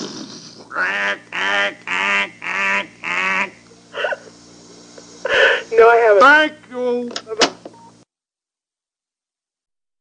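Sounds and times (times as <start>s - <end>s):
duck quacking: 0.7s - 3.6s
speech: 6.2s - 7.2s.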